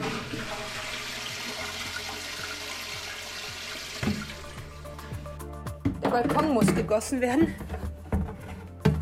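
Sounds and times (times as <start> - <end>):
toilet flushing: 0.0 - 5.3
toilet water draining with gurgles and trickles: 0.0 - 5.4
speech: 6.1 - 7.8.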